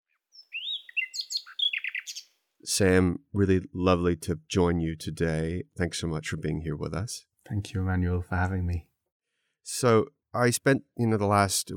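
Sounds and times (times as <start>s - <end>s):
nightingale singing: 0.2s - 2.4s
speech: 2.8s - 8.9s, 9.7s - 11.7s.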